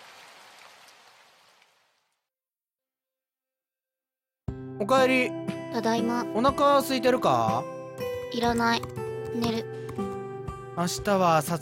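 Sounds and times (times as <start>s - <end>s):
steady rain pouring down: 0.0s - 2.0s
speech: 4.5s - 7.7s, 8.3s - 9.8s, 10.8s - 11.6s.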